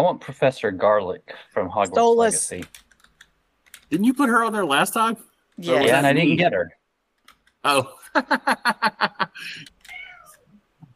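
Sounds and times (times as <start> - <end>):
speech: 0.0 - 2.8, 3.9 - 6.8, 7.6 - 9.8
laughter: 8.0 - 9.7
cat meowing in a hallway: 9.9 - 10.4.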